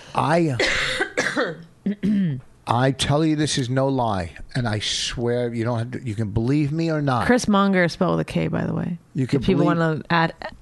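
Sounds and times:
speech: 0.2 - 10.6
person coughing: 0.5 - 2.4.

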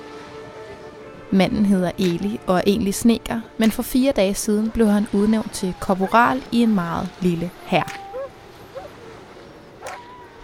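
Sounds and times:
speech: 1.3 - 8.0
sled dogs pulling a sled across a frozen fjord yipping and barking: 4.6 - 10.4.

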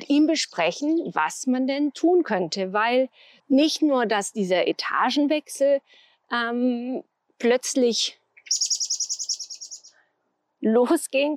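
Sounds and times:
speech: 0.1 - 9.0, 10.6 - 11.3
small bird singing a trill of high chirps in a tree: 8.4 - 10.0.

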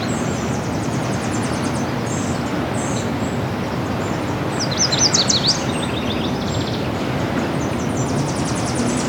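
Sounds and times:
Nashville warbler singing: 0.0 - 9.0.

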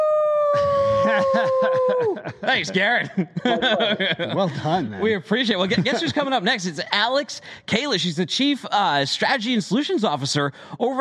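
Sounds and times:
person imitating a wolf howl: 0.0 - 2.3
laughter: 0.5 - 6.7
speech: 1.3 - 10.9.

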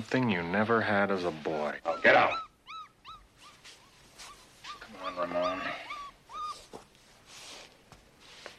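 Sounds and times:
speech: 0.0 - 2.4
small puppy whimpering and yelping: 1.8 - 6.9.

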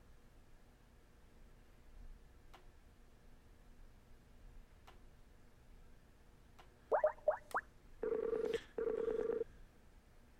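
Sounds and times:
quick electronic phone blips: 6.9 - 7.6
outgoing phone line ringback tone: 8.0 - 9.4.

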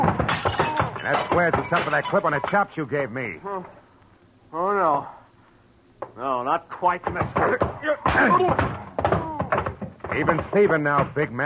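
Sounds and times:
thumps and crashes of a man falling and knocking over a chair and desk items: 0.0 - 2.7, 7.0 - 11.4
speech: 1.1 - 3.8, 4.5 - 5.2, 6.1 - 8.9, 10.1 - 11.4.

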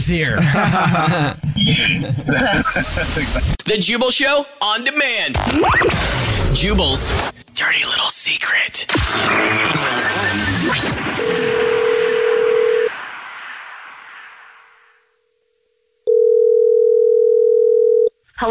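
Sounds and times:
speech: 0.0 - 11.6
laughter: 0.3 - 3.6
noisy burst on a telephone line: 1.5 - 3.6, 5.4 - 15.2
telephone line tone as a call is placed back: 11.2 - 12.9, 16.1 - 18.1.

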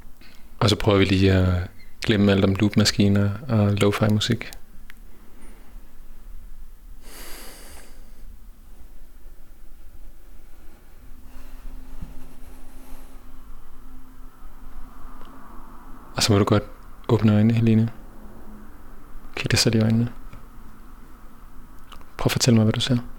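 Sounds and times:
low steady hum: 0.0 - 23.1
speech: 0.6 - 4.6, 16.3 - 18.0, 19.4 - 20.2, 22.2 - 23.1
slow deep breaths: 5.0 - 6.1, 7.0 - 9.0, 10.2 - 14.0.

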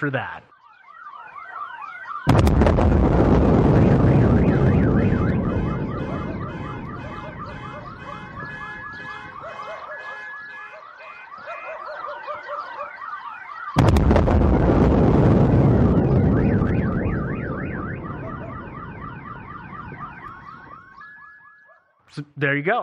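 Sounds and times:
speech: 0.0 - 0.5, 22.2 - 22.8
car alarms warbling: 0.0 - 22.1
deep skyquake booms: 2.3 - 9.4, 13.8 - 21.0.

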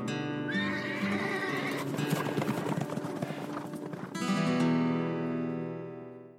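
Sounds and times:
horse neighing: 0.5 - 3.8
horse hooves clip-clopping: 0.6 - 5.1.

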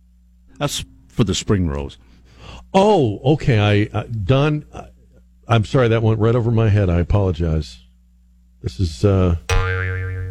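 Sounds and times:
speech: 0.6 - 4.9, 5.5 - 7.8, 8.6 - 9.5
cartoon spring boing sound effect: 9.5 - 10.2.

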